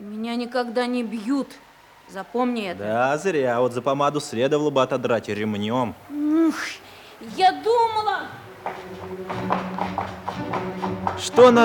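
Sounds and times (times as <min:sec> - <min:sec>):
speech: 0:00.2 - 0:11.6
horse trotting across a wooden bridge with gaps between its planks: 0:07.3 - 0:11.6.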